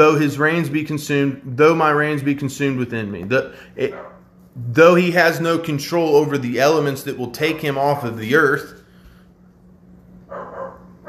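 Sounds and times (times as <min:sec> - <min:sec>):
speech: 0:00.0 - 0:08.8
steady low electrical hum: 0:00.0 - 0:11.0
dog barking outside: 0:03.9 - 0:04.2, 0:10.3 - 0:11.0.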